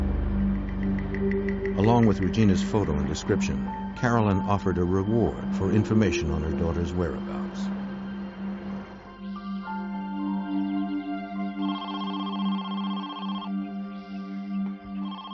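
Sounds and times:
steady low hum: 0.0 - 11.9
speech: 1.8 - 7.8
telephone ringing with bright electronic ringtone: 11.6 - 13.6, 15.0 - 15.3.

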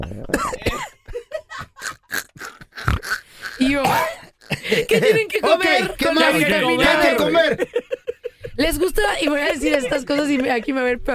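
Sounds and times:
person coughing in short bursts: 0.0 - 1.1, 2.8 - 5.3
breathy laugh-like sounds: 1.1 - 5.1
speech: 3.6 - 4.1, 4.7 - 7.9, 8.6 - 11.1.

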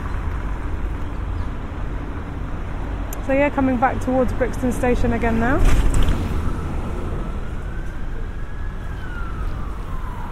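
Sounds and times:
dense street traffic rumble with police cars ambulances and buses in South London: 0.0 - 10.3
speech: 3.3 - 6.0
emergency vehicle siren wailing in South London: 6.2 - 10.3.

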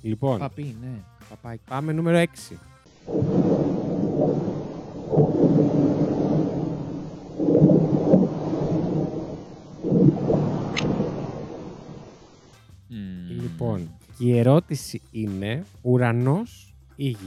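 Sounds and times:
speech: 0.0 - 3.7, 13.6 - 17.2
deep heavy ground rumbling before an earthquake: 3.0 - 12.4.

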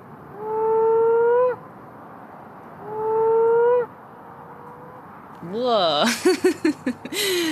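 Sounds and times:
male moaning frog giving low moaning calls to attract females: 0.3 - 1.6, 2.8 - 3.9
speech: 5.5 - 7.4.

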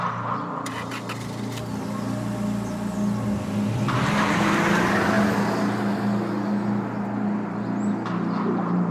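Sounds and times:
car engine rumble while driving: 0.0 - 8.9
car road noise: 0.0 - 8.9.

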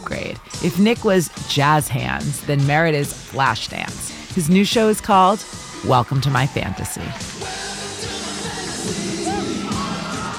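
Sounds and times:
speech: 0.3 - 7.4
large crowd of women screaming and cheering: 5.4 - 10.3
shrill whoops: 7.1 - 10.3.

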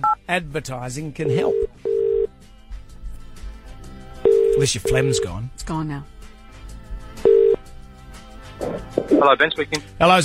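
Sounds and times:
speech: 0.0 - 1.8, 4.6 - 6.2, 9.2 - 10.2
dial tone beep: 1.2 - 2.3, 4.3 - 5.3, 7.2 - 7.6
telephone line ringing: 1.2 - 2.3, 4.3 - 5.3, 7.2 - 7.6.

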